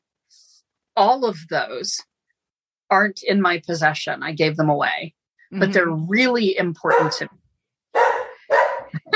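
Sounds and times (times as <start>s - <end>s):
speech: 1.0s - 2.1s, 2.9s - 7.4s
puppy barking: 6.9s - 7.2s, 7.9s - 9.0s.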